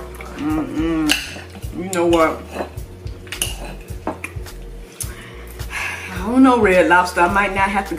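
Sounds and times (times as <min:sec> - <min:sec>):
low steady hum: 0:00.0 - 0:07.9
speech: 0:00.4 - 0:02.7, 0:06.3 - 0:07.9
metal cutlery clinking and scraping on dishes while serving food: 0:01.0 - 0:04.4.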